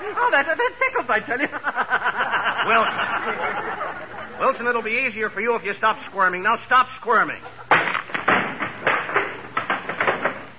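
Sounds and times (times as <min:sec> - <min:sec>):
laughter: 0:00.0 - 0:04.8, 0:07.3 - 0:07.8
speech: 0:00.2 - 0:03.8, 0:04.4 - 0:07.6
wooden chair breaking apart: 0:07.7 - 0:10.5.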